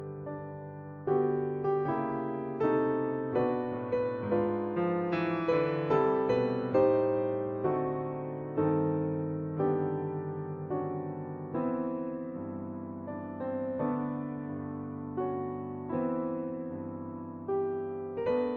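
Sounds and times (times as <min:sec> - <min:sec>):
piano Christmas carol ringtone: 0:00.0 - 0:18.5.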